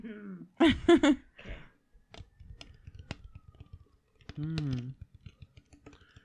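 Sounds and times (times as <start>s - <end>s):
empty bottle being handled, clicking and tapping: 2.1s - 6.2s.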